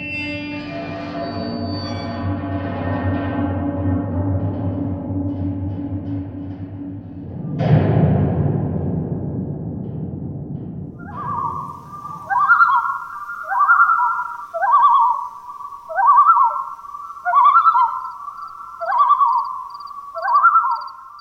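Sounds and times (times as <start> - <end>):
brief low rumble: 2.2 - 12.3
common loon yodel call: 11.0 - 21.2.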